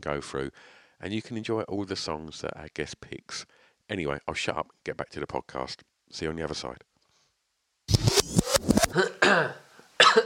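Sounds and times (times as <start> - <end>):
speech: 0.0 - 6.9, 8.9 - 10.2
person coughing: 8.9 - 10.2.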